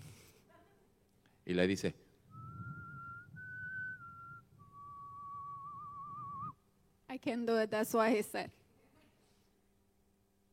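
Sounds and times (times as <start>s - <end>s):
speech: 1.5s - 2.0s, 7.2s - 8.6s
soft gentle whistled melody: 2.3s - 6.6s.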